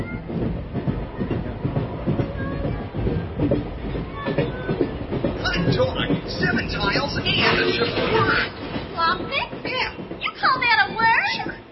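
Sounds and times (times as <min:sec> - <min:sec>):
train rumbling along rails with clickety-clack of wheels over track joints: 0:00.0 - 0:11.7
speech: 0:05.7 - 0:09.6.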